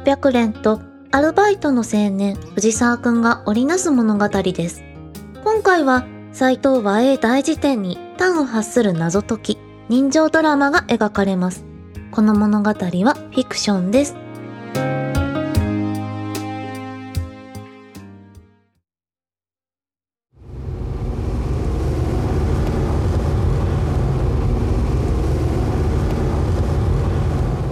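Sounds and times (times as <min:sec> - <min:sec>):
speech: 0:00.0 - 0:15.0
short musical phrase: 0:14.4 - 0:17.1
road traffic in a traffic jam near Dazaifu Tenmangu shrine in Japan: 0:20.5 - 0:27.7.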